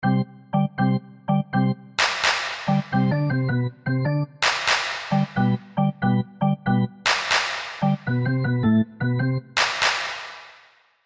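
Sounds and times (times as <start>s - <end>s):
arena organ music: 0.0s - 2.0s, 2.6s - 7.1s, 7.8s - 9.6s.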